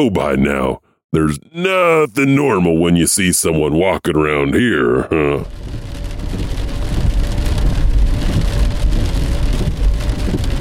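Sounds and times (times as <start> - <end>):
speech: 0.0 - 5.9
heavy rain drumming on a hard surface: 5.1 - 10.5.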